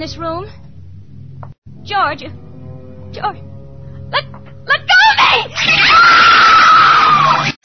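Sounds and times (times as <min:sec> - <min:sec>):
speech: 0:00.0 - 0:00.6, 0:01.4 - 0:02.4, 0:03.1 - 0:03.5
woman screaming: 0:04.2 - 0:07.5.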